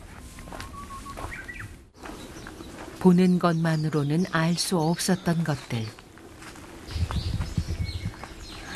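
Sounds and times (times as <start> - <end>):
birds chirping and singing in a forest: 0.4 - 8.7
speech: 3.0 - 6.0
soft irregular low thumps: 6.9 - 8.5.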